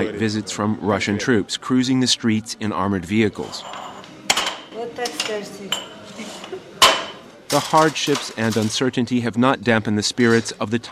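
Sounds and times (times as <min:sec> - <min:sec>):
speech: 0:00.0 - 0:03.8, 0:05.0 - 0:05.9, 0:07.5 - 0:10.8
low background of kitchen activity: 0:00.0 - 0:10.8
pots and cutlery clinking while dishes are washed: 0:03.5 - 0:09.0.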